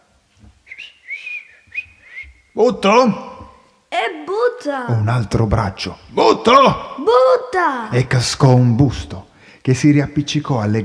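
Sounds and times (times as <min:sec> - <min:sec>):
person whistling a short lilting tune: 0:00.7 - 0:02.6
speech: 0:02.6 - 0:03.3, 0:04.6 - 0:10.8.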